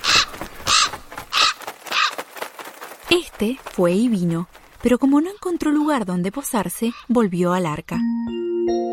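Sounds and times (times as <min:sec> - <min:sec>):
raven cawing: 0:00.0 - 0:03.0, 0:06.8 - 0:07.1
speech: 0:03.1 - 0:08.8.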